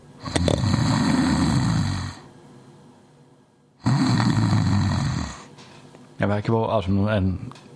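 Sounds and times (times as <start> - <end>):
large animal snoring: 0.2 - 2.3, 3.8 - 5.5
speech: 6.2 - 7.7.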